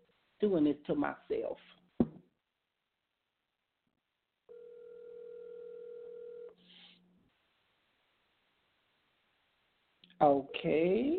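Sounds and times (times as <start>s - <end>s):
speech: 0.4s - 1.8s, 10.2s - 11.1s
telephone ringing tone of an unanswered outgoing call: 4.5s - 6.6s.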